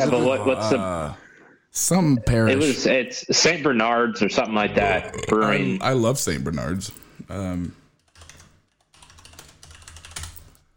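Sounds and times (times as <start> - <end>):
speech: 0.0 - 7.8
clicky keystrokes on a mechanical keyboard: 8.0 - 10.6.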